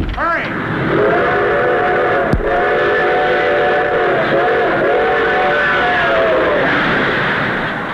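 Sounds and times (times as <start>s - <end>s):
train rumbling past a tourist cabin: 0.0s - 7.9s
train whistle blowing: 0.9s - 6.7s.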